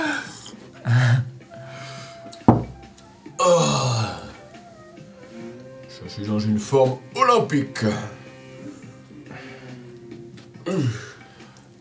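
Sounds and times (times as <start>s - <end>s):
loud exaggerated yawn: 0.0s - 2.4s, 3.4s - 4.4s, 10.6s - 11.5s
sharp knock: 2.5s - 2.9s
speech: 6.2s - 8.2s.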